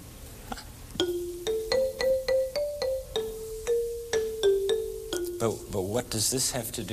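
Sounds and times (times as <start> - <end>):
marimbaphone struck with mallets: 1.0 - 6.0
speech: 5.4 - 6.9.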